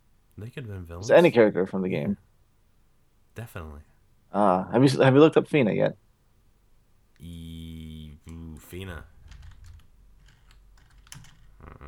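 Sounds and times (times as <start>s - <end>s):
low hum: 0.0s - 11.8s
speech: 0.4s - 2.3s, 3.4s - 6.0s, 7.2s - 7.5s, 8.7s - 9.1s
typing on a computer keyboard: 9.2s - 11.5s.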